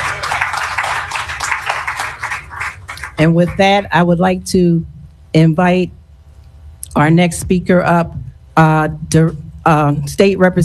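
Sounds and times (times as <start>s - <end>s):
crowd applauding, many hands clapping: 0.0s - 3.7s
speech: 3.2s - 6.0s, 7.0s - 10.6s.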